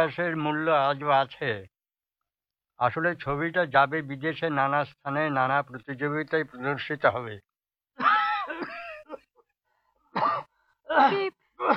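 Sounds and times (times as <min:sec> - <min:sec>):
speech: 0:00.0 - 0:01.7, 0:02.8 - 0:08.8, 0:10.9 - 0:11.7
person coughing harshly in the next room: 0:08.0 - 0:09.2, 0:10.1 - 0:11.7.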